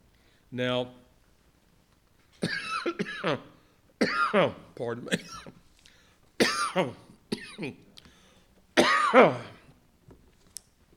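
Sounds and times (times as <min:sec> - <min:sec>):
speech: 0:00.5 - 0:01.0, 0:02.4 - 0:05.6, 0:06.8 - 0:07.0, 0:07.6 - 0:07.8, 0:09.1 - 0:09.6
person coughing after a cough drop went down wrong: 0:02.4 - 0:05.6, 0:06.4 - 0:07.8, 0:08.8 - 0:09.7.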